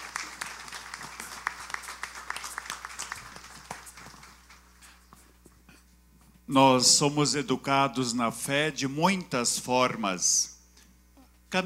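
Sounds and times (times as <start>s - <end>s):
crowd applauding at a religious pilgrimage event: 0.0s - 5.0s
speech: 6.5s - 10.5s.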